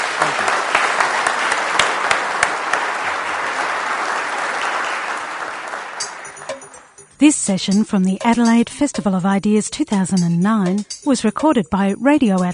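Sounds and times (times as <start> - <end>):
large crowd applauding: 0.0 - 7.0
speech: 7.2 - 12.5.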